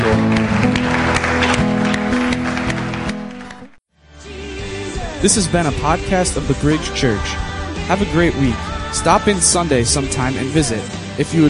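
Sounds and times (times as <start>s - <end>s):
audience clapping and cheering: 0.0s - 3.8s
sustained music: 0.0s - 11.4s
speech: 5.2s - 11.4s.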